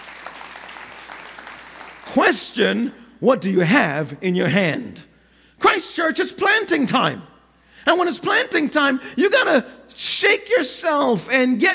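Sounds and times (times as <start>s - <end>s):
room full of people clapping: 0.0s - 2.4s
speech: 2.1s - 5.1s, 5.7s - 11.7s.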